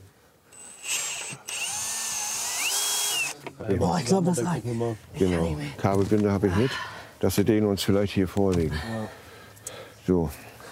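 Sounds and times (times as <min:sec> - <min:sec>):
power drill drilling into material: 0:00.5 - 0:03.4
speech: 0:03.6 - 0:09.2, 0:10.1 - 0:10.5.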